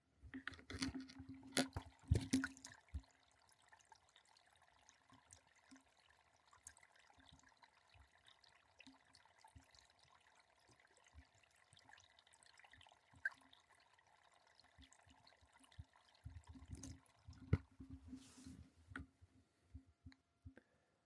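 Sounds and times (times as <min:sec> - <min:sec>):
water running and trickling: 0:00.6 - 0:18.5.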